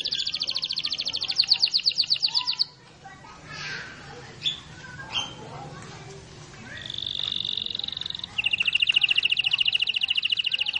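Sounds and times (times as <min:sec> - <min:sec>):
canary singing long rolling trills and sharp repeated notes: 0:00.0 - 0:02.8, 0:04.4 - 0:05.5, 0:06.6 - 0:10.7.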